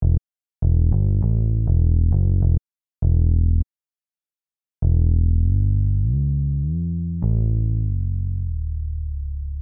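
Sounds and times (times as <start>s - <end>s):
dry fretless bass: 0.0s - 3.7s, 4.8s - 9.6s.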